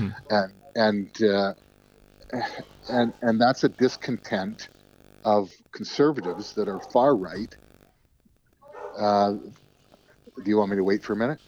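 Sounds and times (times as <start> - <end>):
speech: 0.1 - 1.7, 2.3 - 7.6, 9.0 - 9.6, 10.4 - 11.4
single drawn-out dog bark: 6.1 - 7.1, 8.6 - 9.1.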